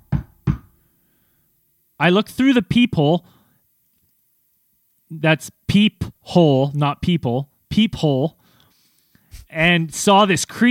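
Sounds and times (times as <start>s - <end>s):
knocking on an apartment door in Los Angeles: 0.0s - 0.7s
speech: 2.0s - 3.4s, 5.1s - 8.4s, 9.5s - 10.6s.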